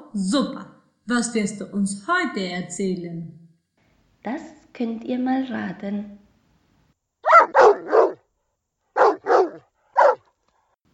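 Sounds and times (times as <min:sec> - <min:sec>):
speech: 0:00.1 - 0:03.4, 0:04.2 - 0:06.2
dog barking: 0:07.2 - 0:08.3, 0:08.9 - 0:10.3.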